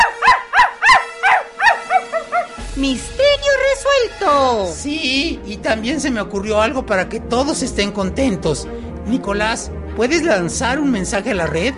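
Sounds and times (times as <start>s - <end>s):
small female dog barking frantically: 0.0s - 2.6s
speech: 2.8s - 3.2s, 4.0s - 11.7s.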